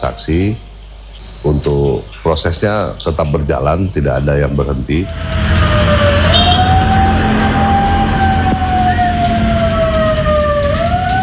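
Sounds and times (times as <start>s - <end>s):
speech: 0.0s - 0.7s, 1.4s - 6.4s
constant rumble of traffic: 4.6s - 11.0s
wailing siren like an ambulance siren on a street in Parepare, South Sulawesi: 5.0s - 11.2s.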